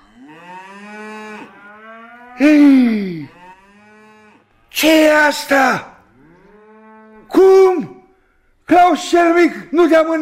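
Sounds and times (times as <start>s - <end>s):
cattle herd mooing while being driven: 0.0s - 4.7s, 6.0s - 7.4s
speech: 2.4s - 3.4s, 5.1s - 5.9s, 8.7s - 10.2s.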